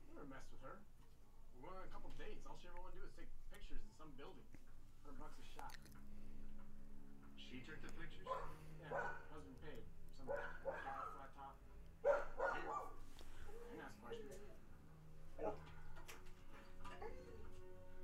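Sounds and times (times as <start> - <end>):
steady low hum: 0.0 - 18.0
speech: 0.3 - 6.4, 7.4 - 14.6, 15.4 - 15.8
several dogs barking and yipping: 8.3 - 9.2, 10.2 - 11.2, 12.0 - 13.0, 15.4 - 15.8.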